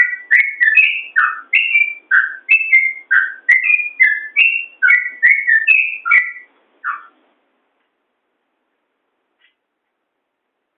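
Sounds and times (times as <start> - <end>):
yellow-vented bulbul song: 0.0 - 7.2.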